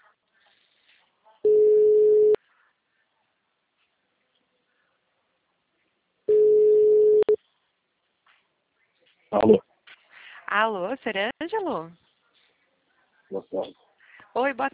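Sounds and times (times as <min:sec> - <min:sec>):
telephone ringback tone on an outgoing call: 0:01.5 - 0:02.4, 0:06.3 - 0:07.4
speech: 0:09.3 - 0:09.7, 0:10.5 - 0:12.0, 0:13.3 - 0:13.8, 0:14.4 - 0:14.7.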